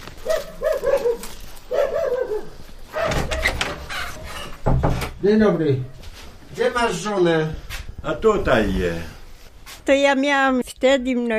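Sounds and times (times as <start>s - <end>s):
fierce dogs barking: 0.2s - 3.6s
speech: 5.2s - 6.0s, 6.6s - 9.2s, 9.8s - 11.3s.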